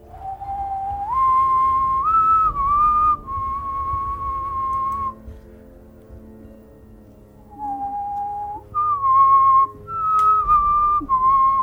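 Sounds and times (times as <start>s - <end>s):
person whistling a short melodic tune: 0.0s - 5.2s, 7.5s - 11.6s.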